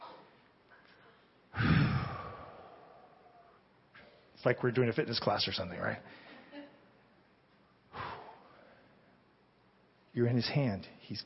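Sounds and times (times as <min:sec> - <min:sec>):
deep breath: 0:00.0 - 0:04.3, 0:07.9 - 0:09.2
speech: 0:04.4 - 0:06.3, 0:10.2 - 0:11.2.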